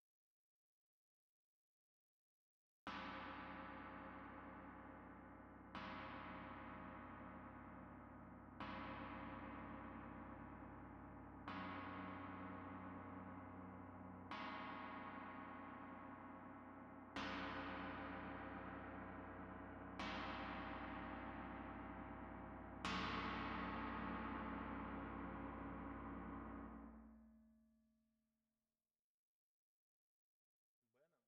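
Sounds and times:
tam-tam struck at front: 0:03.0 - 0:27.6.

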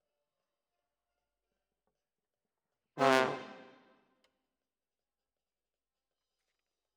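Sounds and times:
trombone: 0:03.0 - 0:03.8.

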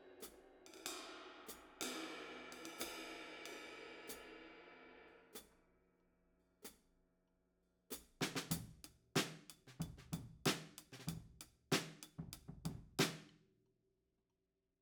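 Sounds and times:
drum overheads: 0:00.2 - 0:05.4, 0:08.2 - 0:13.3.

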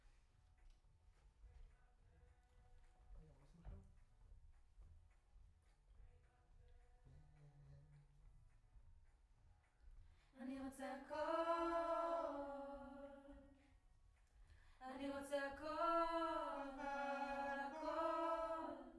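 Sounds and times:
distant choir singing: 0:10.4 - 0:13.6, 0:14.9 - 0:18.9.

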